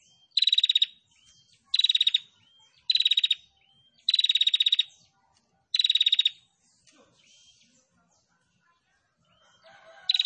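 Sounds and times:
female prinia song of buzzy pulsed bursts: 0.0s - 7.8s.

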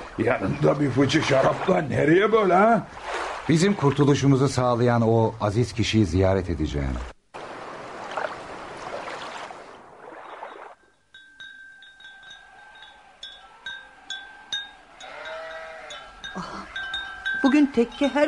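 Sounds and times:
speech: 0.2s - 7.1s, 17.8s - 18.2s
sheep bleating in a dervish lodge's garden: 12.5s - 17.2s.

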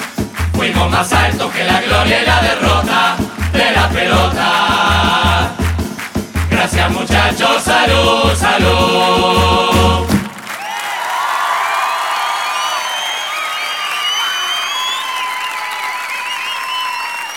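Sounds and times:
crowd applauding: 0.0s - 6.9s, 9.0s - 17.3s
speech: 0.6s - 5.2s, 6.6s - 10.2s
shrill whistles: 11.6s - 17.3s.

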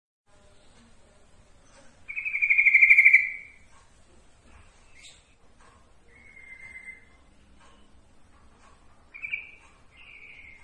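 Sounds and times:
yellow-vented bulbul song: 1.6s - 3.7s, 6.0s - 8.1s, 9.0s - 10.6s.

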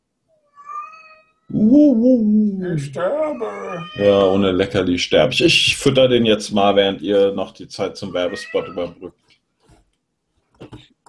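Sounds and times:
tomcat meowing: 0.4s - 1.5s, 3.0s - 4.4s, 8.1s - 9.0s
speech: 1.5s - 9.3s.

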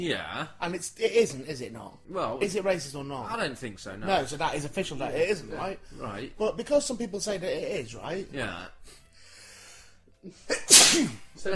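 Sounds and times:
speech: 0.0s - 9.0s, 10.2s - 11.5s
single sharp loud sneeze: 10.5s - 11.3s.

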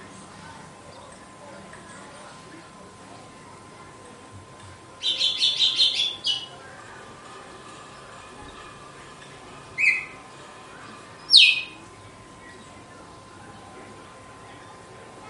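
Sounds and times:
female red-cowled cardinal song: 5.0s - 6.6s, 9.8s - 10.2s, 11.2s - 11.8s.

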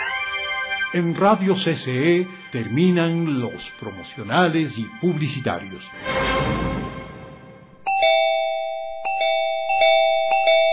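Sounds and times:
speech: 0.9s - 6.8s
doorbell ringing with bright ding-dong chimes: 7.8s - 10.7s.

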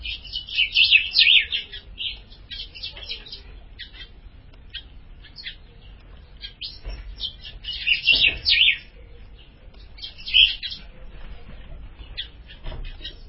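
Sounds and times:
Ultramarine grosbeak delivering warbled, slurred phrases: 0.0s - 10.9s.

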